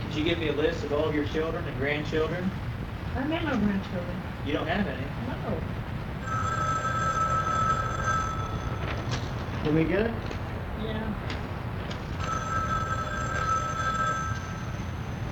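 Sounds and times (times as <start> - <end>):
speech: 0.1 - 5.9, 9.7 - 11.3
telephone ringing with an electronic trill: 6.2 - 9.7, 12.0 - 15.2.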